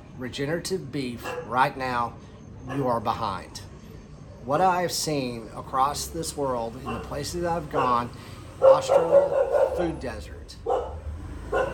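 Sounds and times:
speech: 0.2s - 3.7s, 4.4s - 10.8s
dog giving a short bark: 1.2s - 1.6s, 6.8s - 10.0s, 10.6s - 11.7s.

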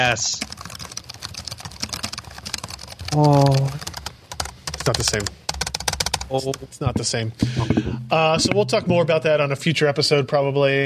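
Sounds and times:
speech: 0.0s - 0.5s, 3.1s - 3.9s, 4.8s - 5.4s, 6.3s - 10.8s
typing on the keyboard of a hacked laptop from around 2008: 0.0s - 6.6s.

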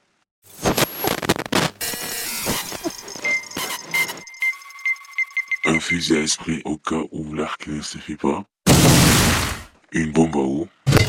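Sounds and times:
radio static crackling while a dial sweeps through stations: 0.5s - 5.9s
brief warbling tones from a radio: 1.8s - 6.0s
steady whistles from a radio: 2.8s - 6.0s
speech: 5.8s - 8.6s, 9.9s - 10.8s.

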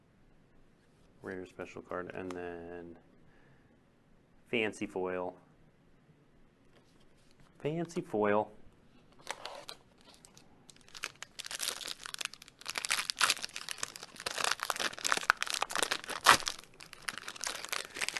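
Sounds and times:
speech: 1.2s - 3.1s, 4.5s - 5.4s, 7.6s - 8.6s
foil trading card booster pack wrapper being torn open: 9.2s - 18.1s.

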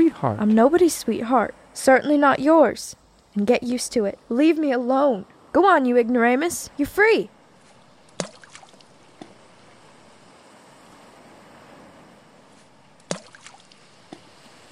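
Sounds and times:
speech: 0.2s - 7.4s
gentle cold water lapping: 7.5s - 14.7s.

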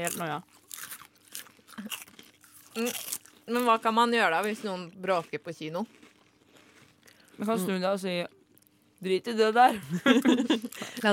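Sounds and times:
speech: 0.0s - 0.6s, 2.8s - 6.0s, 7.4s - 8.4s, 9.0s - 11.1s
crunchy chewing of food: 0.0s - 7.6s, 8.4s - 9.0s
laughter: 9.7s - 11.1s.

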